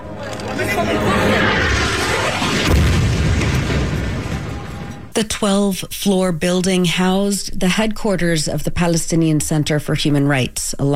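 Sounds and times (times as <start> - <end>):
excited chatter of people: 0.0 - 1.9
continuous roaring rumble of building destruction: 0.0 - 5.1
deep heavy boom of building explosion from bombing: 0.5 - 5.1
speech: 5.2 - 10.9.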